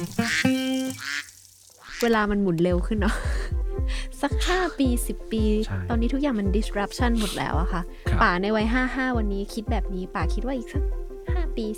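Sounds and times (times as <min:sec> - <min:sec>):
duck quacking: 0:00.0 - 0:02.1
speech: 0:02.0 - 0:03.4, 0:04.2 - 0:11.0, 0:11.6 - 0:11.7.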